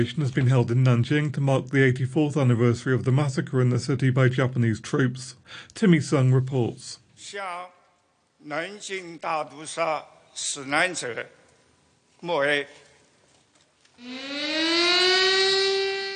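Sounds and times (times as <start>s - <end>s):
speech: 0.0s - 7.8s, 8.4s - 11.4s, 12.2s - 12.8s, 14.0s - 15.0s
air raid siren across Nanjing China at a national ceremony: 14.0s - 16.1s.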